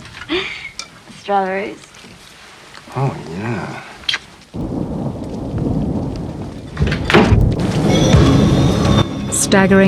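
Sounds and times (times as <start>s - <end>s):
heavy rain: 0.0s - 9.8s
speech: 1.3s - 1.9s, 2.9s - 3.9s, 9.4s - 9.8s
deep rumbles of thunder: 3.1s - 9.8s.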